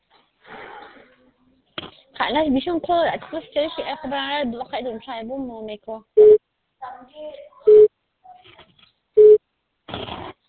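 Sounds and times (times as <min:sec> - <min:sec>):
speech: 0:02.2 - 0:06.4
telephone busy signal beeps for a busy or unreachable number: 0:06.2 - 0:06.4, 0:07.7 - 0:07.9, 0:09.2 - 0:09.4.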